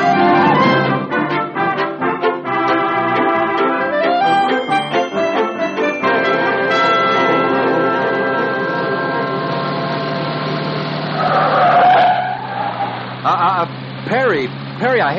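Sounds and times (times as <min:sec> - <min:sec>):
convertible car engine driving fast: 0:00.0 - 0:15.1.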